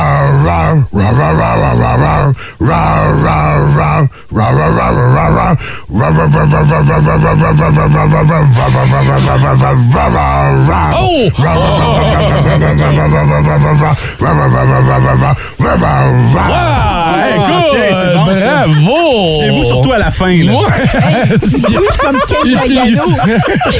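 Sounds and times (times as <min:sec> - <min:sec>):
person imitating a bear growl: 0:00.0 - 0:23.7
short breaths: 0:02.4 - 0:02.6, 0:05.6 - 0:05.9, 0:13.9 - 0:14.2, 0:15.4 - 0:15.6
speech: 0:04.9 - 0:23.7
laughter: 0:06.6 - 0:23.7.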